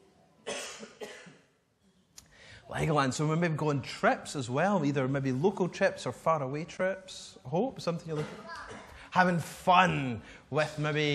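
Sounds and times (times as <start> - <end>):
person coughing: 0.4 - 1.6, 8.1 - 9.0
speech: 2.7 - 8.6, 9.2 - 11.1.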